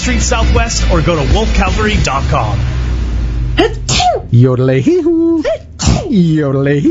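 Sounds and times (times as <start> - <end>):
speech: 0.0 - 2.7, 3.6 - 6.8
person sneezing loudly with voiced wind-up sounds: 5.5 - 6.2.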